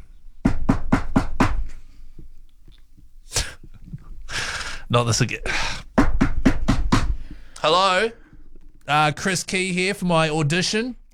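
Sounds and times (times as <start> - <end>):
firm knocking on a door: 0.4 - 1.8, 5.9 - 7.4
speech: 4.9 - 5.8, 7.6 - 8.2, 8.9 - 11.0.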